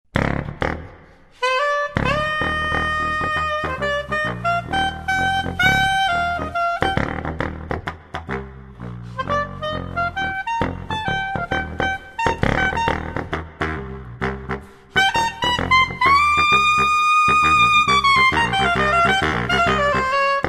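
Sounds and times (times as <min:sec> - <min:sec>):
German-made soprillo piccolo saxophone: 0:00.1 - 0:20.4.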